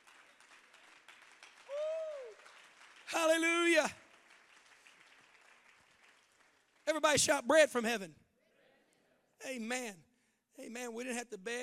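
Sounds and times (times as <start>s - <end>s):
audience clapping hands: 0.0s - 7.4s
speech: 3.1s - 4.0s, 6.9s - 8.2s, 9.4s - 10.0s, 10.6s - 11.6s.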